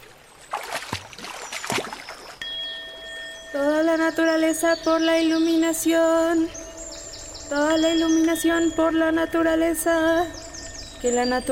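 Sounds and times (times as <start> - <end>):
person wading into water during a ritual: 0.0 - 2.4
steady tonal ringing: 2.4 - 11.5
speech: 3.6 - 6.6, 7.5 - 10.4, 11.0 - 11.5.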